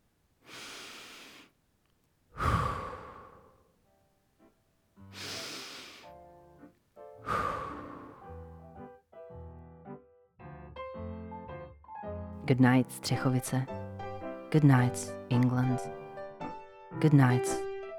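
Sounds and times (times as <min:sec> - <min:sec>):
slow deep breathing during a morning meditation: 0:00.4 - 0:01.6, 0:02.3 - 0:03.8, 0:05.0 - 0:06.2, 0:07.1 - 0:08.8
speech: 0:12.5 - 0:13.8, 0:14.5 - 0:16.0, 0:17.0 - 0:17.7.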